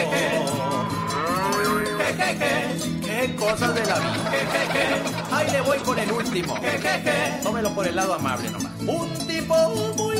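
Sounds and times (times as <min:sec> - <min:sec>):
cow mooing: 0:00.4 - 0:02.1
speech: 0:02.2 - 0:10.0
laughter: 0:03.4 - 0:07.6.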